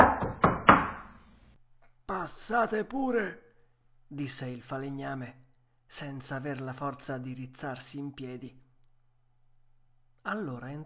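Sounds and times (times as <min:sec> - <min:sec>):
knocking on a wooden door: 0:00.0 - 0:01.1
speech: 0:02.2 - 0:03.4, 0:04.1 - 0:08.6, 0:10.2 - 0:10.8.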